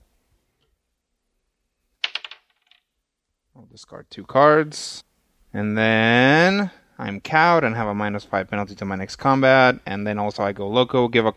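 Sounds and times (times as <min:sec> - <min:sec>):
die rolled onto a table during a card game: 0:02.0 - 0:02.8
speech: 0:03.6 - 0:11.3.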